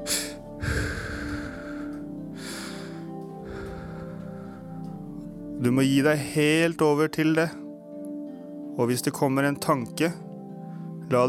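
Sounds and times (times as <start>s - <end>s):
deep breath during a relaxation exercise: 0.0s - 5.3s
speech: 5.6s - 7.6s, 8.8s - 10.2s, 11.1s - 11.2s.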